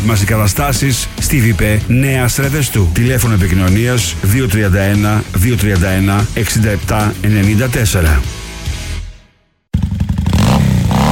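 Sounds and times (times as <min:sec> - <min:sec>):
speech: 0:00.0 - 0:08.4
motorcycle engine revving: 0:09.7 - 0:11.0.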